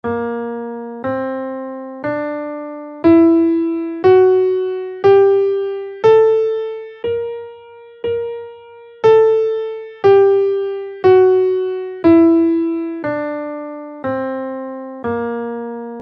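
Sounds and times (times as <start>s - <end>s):
guitar playing a lydian augmented scale in Bb: 3.0s - 13.8s.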